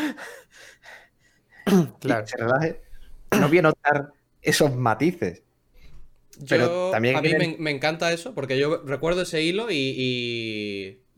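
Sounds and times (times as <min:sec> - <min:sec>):
person imitating a character's breathing with short breathy exhales: 0:00.0 - 0:01.6
speech: 0:01.7 - 0:05.4, 0:06.4 - 0:11.1.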